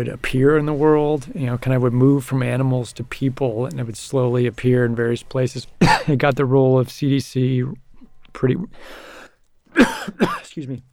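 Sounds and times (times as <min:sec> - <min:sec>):
speech: 0:00.0 - 0:07.8, 0:08.4 - 0:09.2, 0:09.8 - 0:10.9
rough throaty coughs: 0:05.8 - 0:06.2, 0:09.7 - 0:10.5
brief low breath: 0:08.8 - 0:09.4.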